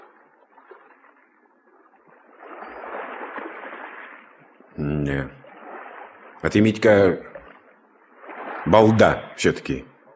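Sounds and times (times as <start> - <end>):
oars of a rowing boat pulling through water: 0.0 - 10.1
speech: 4.8 - 5.4, 6.4 - 7.3, 8.7 - 9.9.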